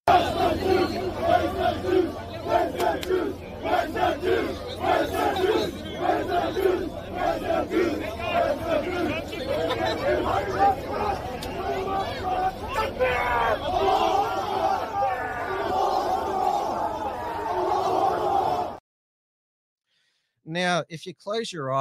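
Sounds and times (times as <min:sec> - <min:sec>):
laughter: 0:00.1 - 0:16.2
protest crowd chanting slogans in unison: 0:00.1 - 0:18.8
speech: 0:20.6 - 0:21.7.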